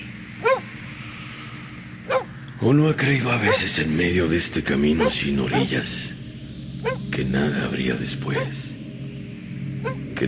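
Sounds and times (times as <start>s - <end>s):
low rumble: 0.0s - 10.2s
dog barking: 0.4s - 0.7s, 2.1s - 2.3s, 3.5s - 3.8s, 5.0s - 5.8s, 6.8s - 7.0s
speech: 2.6s - 6.2s, 6.8s - 8.7s.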